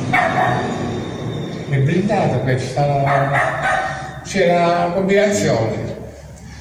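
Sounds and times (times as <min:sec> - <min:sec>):
dog barking behind a closed door: 0:00.1 - 0:00.7, 0:03.0 - 0:04.2
speech: 0:01.8 - 0:05.9.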